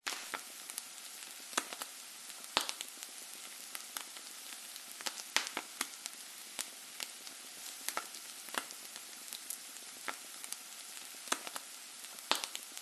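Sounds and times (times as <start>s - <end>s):
egg frying in a pan: 0.0s - 12.8s.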